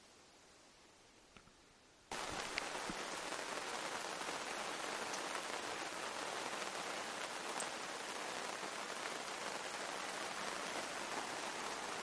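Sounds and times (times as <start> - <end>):
rain falling on leaves and ground in woods near Lake Huron: 0.0 - 12.0.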